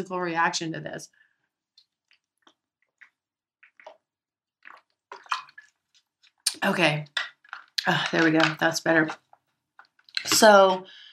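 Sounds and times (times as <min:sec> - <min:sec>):
speech: 0:00.0 - 0:01.2, 0:06.6 - 0:07.2, 0:07.8 - 0:09.2, 0:10.2 - 0:11.0
person sipping and gulping water: 0:01.8 - 0:10.6.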